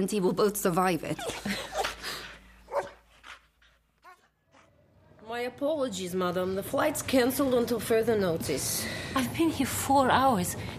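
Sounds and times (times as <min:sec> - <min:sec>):
speech: 0:00.0 - 0:01.8, 0:05.4 - 0:10.7
dog barking: 0:02.7 - 0:03.1, 0:04.0 - 0:04.7
dog yipping and whining: 0:02.7 - 0:03.4.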